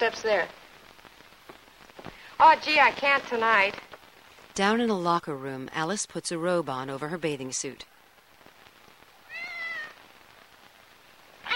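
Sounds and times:
speech: 0:00.0 - 0:00.6, 0:02.4 - 0:03.9, 0:04.6 - 0:07.9
kitten meowing: 0:09.3 - 0:10.0.

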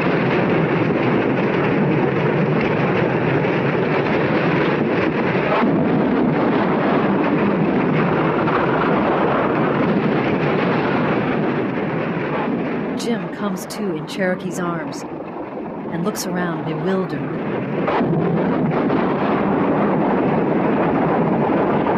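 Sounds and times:
explosions around a truck: 0:00.0 - 0:21.9
speech: 0:13.6 - 0:15.2, 0:15.9 - 0:17.4.

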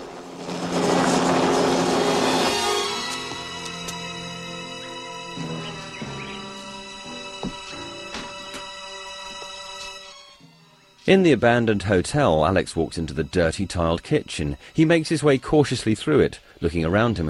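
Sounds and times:
helicopter flying: 0:00.0 - 0:07.0
speech: 0:11.1 - 0:17.2.

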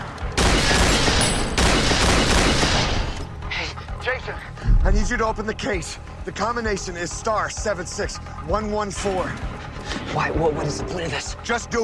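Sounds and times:
gunfire rattling in a firefight: 0:00.3 - 0:03.2
speech: 0:04.2 - 0:09.5, 0:10.1 - 0:11.8.

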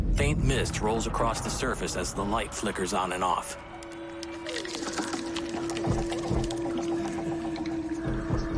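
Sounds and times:
speech: 0:00.2 - 0:03.7
water splashing as someone struggles underwater in a pool: 0:03.6 - 0:08.5.

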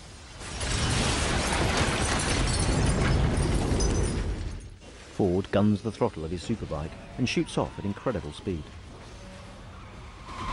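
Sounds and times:
building exploding: 0:00.0 - 0:04.6
speech: 0:05.2 - 0:08.8.

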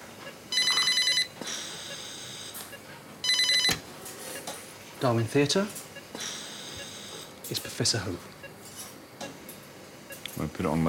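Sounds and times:
faint hum: 0:00.0 - 0:10.8
telephone ringing with rapid electronic trilling: 0:00.5 - 0:02.6, 0:03.2 - 0:03.8
speech: 0:05.0 - 0:06.4, 0:07.5 - 0:08.4, 0:10.4 - 0:10.8.

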